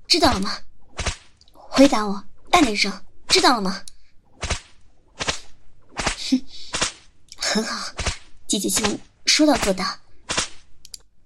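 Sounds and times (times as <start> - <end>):
speech: 0.1 - 0.7, 1.8 - 4.5, 6.3 - 6.6, 7.5 - 10.0
whip cracks landing on a person's body: 0.9 - 1.4, 4.4 - 7.1, 7.8 - 10.7.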